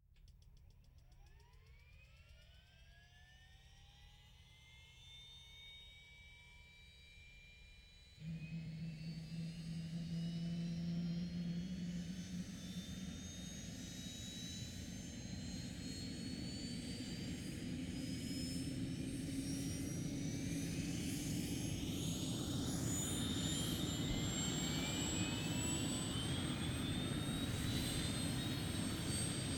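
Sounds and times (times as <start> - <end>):
plane engine starting up: 8.2 - 29.5.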